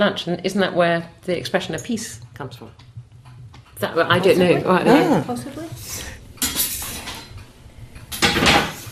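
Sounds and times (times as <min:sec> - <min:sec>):
speech: 0:00.0 - 0:02.8, 0:03.8 - 0:06.2
heavy metal porridge pot scraping and clanking across a stovetop: 0:06.4 - 0:07.4.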